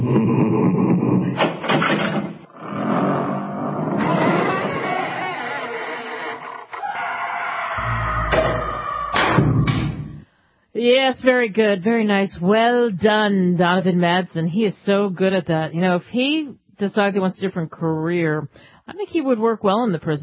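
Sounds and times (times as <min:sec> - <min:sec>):
voice imitating a heavy dungeon door creaking open: 0:00.0 - 0:09.8
speech: 0:11.1 - 0:20.2.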